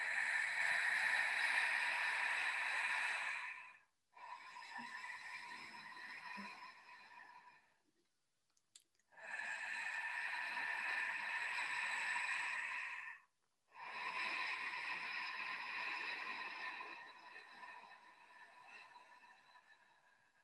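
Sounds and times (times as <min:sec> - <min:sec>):
slow breathing through an open mouth: 0:00.0 - 0:07.8, 0:09.1 - 0:20.4.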